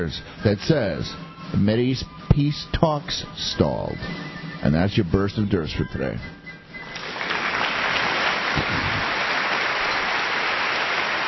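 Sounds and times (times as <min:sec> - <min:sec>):
speech: 0:00.0 - 0:06.4
crowd applauding: 0:07.0 - 0:11.2.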